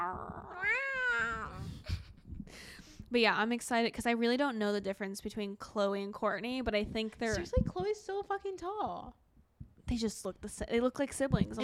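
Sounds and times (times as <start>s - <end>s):
cat meowing anxiously: 0.0s - 1.6s
speech: 3.1s - 9.2s, 9.9s - 11.6s.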